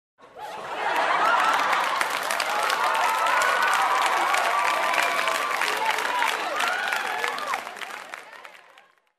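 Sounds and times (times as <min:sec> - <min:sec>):
audience laughing: 0:00.2 - 0:02.6
audience cheering: 0:00.4 - 0:08.9.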